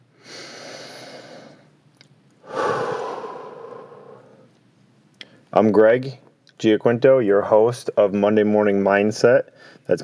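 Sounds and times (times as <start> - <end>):
deep breath: 0.2 - 1.7, 2.4 - 4.5
speech: 5.6 - 10.0.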